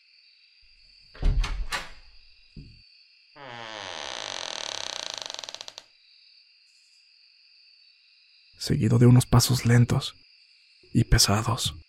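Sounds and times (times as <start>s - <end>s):
door latch clicks: 1.2s - 2.7s
door creaking open with ratcheting squeaks: 1.2s - 2.8s, 3.4s - 5.9s
speech: 8.6s - 10.2s, 10.9s - 11.8s.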